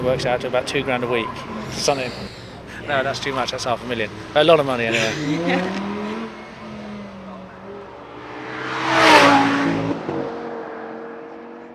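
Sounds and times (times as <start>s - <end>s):
speech: 0.0s - 5.9s
Audi R8 sports car engine revving: 0.0s - 11.7s
laughter: 1.6s - 7.4s.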